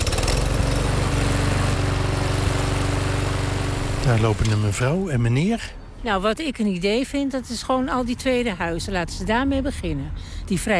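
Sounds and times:
lawn mower engine mowing grass: 0:00.0 - 0:04.9
speech: 0:04.1 - 0:10.7.

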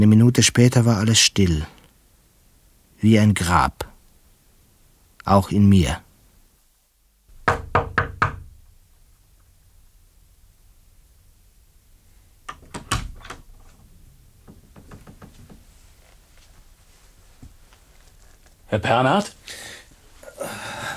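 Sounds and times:
speech: 0:00.0 - 0:01.8, 0:03.0 - 0:03.9, 0:05.2 - 0:06.0, 0:18.7 - 0:19.6
knocking on a door: 0:07.3 - 0:08.6, 0:14.4 - 0:15.6.

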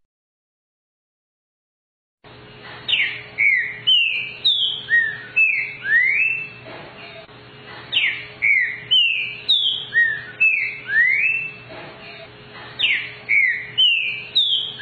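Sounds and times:
green-winged saltator singing rich whistled notes: 0:02.9 - 0:07.2, 0:07.9 - 0:14.8.

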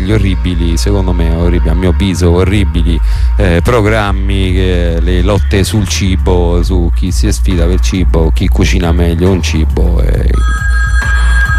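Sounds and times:
speech: 0:00.0 - 0:11.1
telephone ringing for an incoming call: 0:10.3 - 0:11.5.

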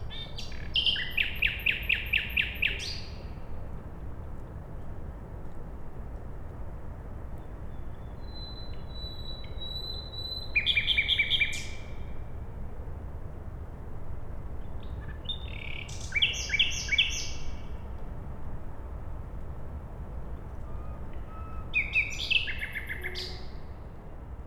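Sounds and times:
common nightingale singing at night beside a road in Siemianowice Śląskie, Poland: 0:00.0 - 0:03.2, 0:08.2 - 0:12.0, 0:15.2 - 0:17.7, 0:21.2 - 0:23.6.

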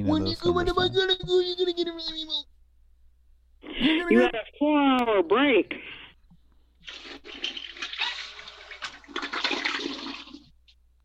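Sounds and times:
speech: 0:00.0 - 0:02.5, 0:03.8 - 0:05.9
toilet flushing: 0:06.8 - 0:10.5.

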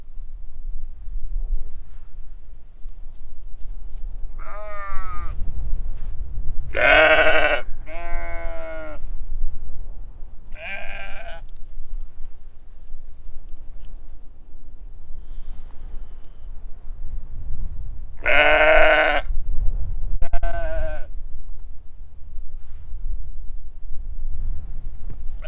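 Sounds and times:
strong low wind rumble on a hill pasture: 0:00.0 - 0:25.4
large flock of sheep bleating on a windy hill pasture: 0:04.4 - 0:05.4, 0:06.8 - 0:09.0, 0:18.2 - 0:19.3, 0:20.2 - 0:21.1.

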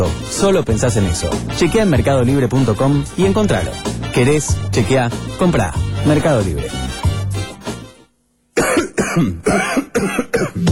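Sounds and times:
speech: 0:00.1 - 0:07.0, 0:09.2 - 0:10.6
person coughing: 0:08.6 - 0:10.6.

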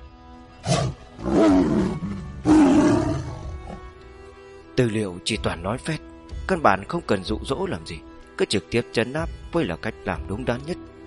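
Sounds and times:
tiger roar sound effect: 0:00.6 - 0:03.8
speech: 0:04.8 - 0:10.9.

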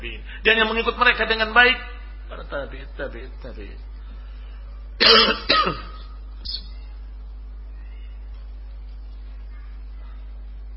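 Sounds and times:
speech: 0:00.4 - 0:03.9, 0:05.0 - 0:06.6
coughing and throat clearing during a lecture in a mosque: 0:05.0 - 0:06.2.

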